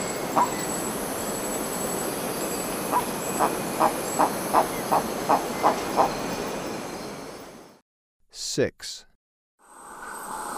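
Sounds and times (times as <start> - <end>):
shrill insects buzzing in Ecuador: 0.0 - 7.5
Baudo guan calling in Ecuador: 0.3 - 0.6, 2.9 - 6.2
speech: 0.4 - 0.7, 2.9 - 4.4, 8.6 - 9.1.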